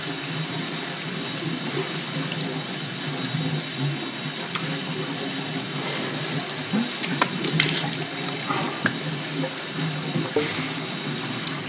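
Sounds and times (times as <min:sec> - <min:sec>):
water running from a sink tap while washing face: 0:00.0 - 0:11.6
water splashing while washing face: 0:05.8 - 0:11.6.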